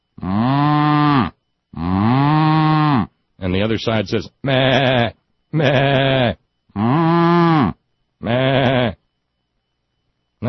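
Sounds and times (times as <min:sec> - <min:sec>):
cow mooing: 0:00.2 - 0:03.1, 0:04.5 - 0:09.0
speech: 0:03.6 - 0:06.4.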